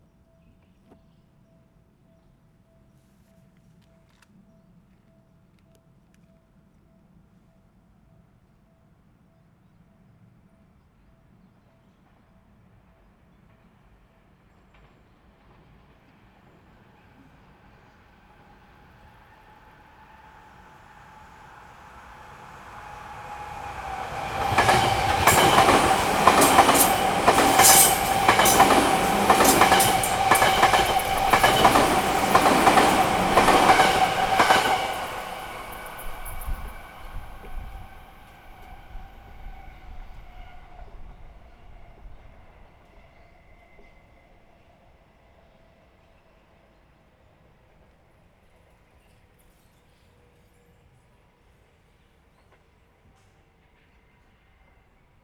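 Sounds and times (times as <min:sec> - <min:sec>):
inbound train passing: 0:13.6 - 0:48.3.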